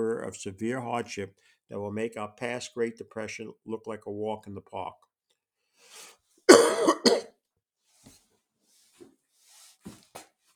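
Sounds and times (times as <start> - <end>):
speech: 0.0 - 5.1
breaths: 1.4 - 1.7, 5.7 - 6.2
harsh double cough: 6.5 - 7.3.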